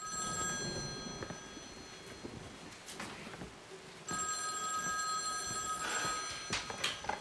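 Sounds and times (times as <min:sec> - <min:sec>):
telephone bell ringing for an incoming call: 0:00.0 - 0:02.6, 0:04.1 - 0:07.2
faint noise: 0:00.0 - 0:07.2.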